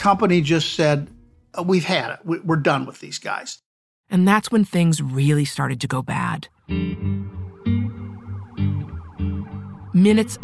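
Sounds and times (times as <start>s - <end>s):
speech: 0.0s - 7.8s, 10.0s - 10.4s
police car sirens wailing as officers surround a building: 6.7s - 10.4s.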